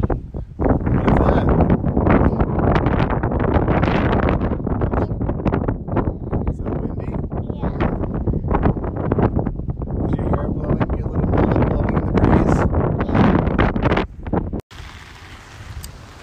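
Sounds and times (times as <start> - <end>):
strong wind buffeting the microphone: 0.0 - 14.6.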